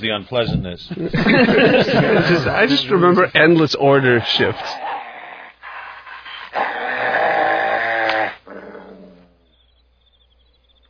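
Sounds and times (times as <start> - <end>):
speech: 0.0 - 4.9
laughter: 0.8 - 3.2
dog growling: 4.1 - 9.5.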